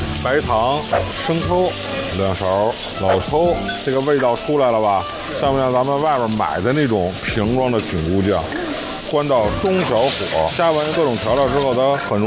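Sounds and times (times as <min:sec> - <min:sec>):
mushrooms with scallion, ginger and garlic stir-frying over high heat in a hot wok: 0:00.0 - 0:12.2
person talking: 0:00.2 - 0:12.2.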